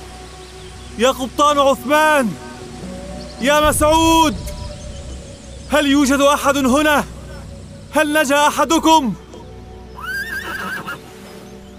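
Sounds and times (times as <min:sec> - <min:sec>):
speech: 0:01.0 - 0:02.4, 0:03.4 - 0:04.5, 0:05.7 - 0:07.1, 0:07.9 - 0:09.2
mare tied on a shore neighing: 0:10.0 - 0:11.0.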